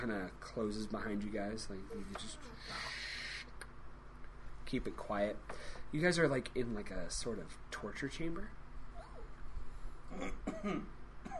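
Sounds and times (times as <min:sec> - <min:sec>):
speech: 0:00.0 - 0:03.2, 0:04.7 - 0:08.6, 0:10.1 - 0:11.3
person clearing throat: 0:10.1 - 0:11.3.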